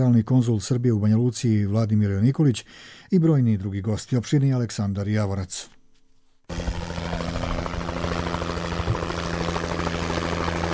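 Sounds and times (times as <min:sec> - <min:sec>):
speech: 0:00.0 - 0:05.8
medical air-ambulance helicopter rotor and engine drone: 0:06.5 - 0:10.7.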